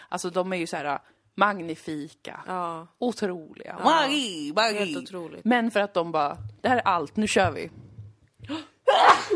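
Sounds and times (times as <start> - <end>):
speech: 0.1 - 7.8, 8.4 - 9.3
single loud sneeze: 8.9 - 9.3.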